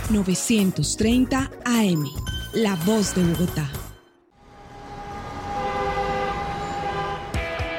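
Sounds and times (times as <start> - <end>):
speech: 0.1 - 3.8
low rumble of city traffic in Bogotá: 4.4 - 7.7
long steady car horn blaring: 4.5 - 7.7.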